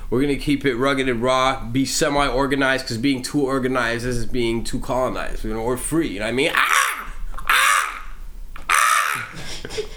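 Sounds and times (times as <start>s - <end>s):
speech: 0.1s - 6.8s
crow cawing: 6.5s - 9.5s.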